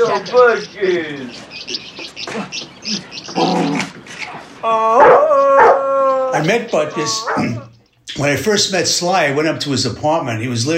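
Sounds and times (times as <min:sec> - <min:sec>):
speech: 0:00.0 - 0:04.0, 0:04.6 - 0:05.3, 0:06.4 - 0:10.7
dog whining bark: 0:04.9 - 0:07.7
dog barking: 0:05.0 - 0:05.8.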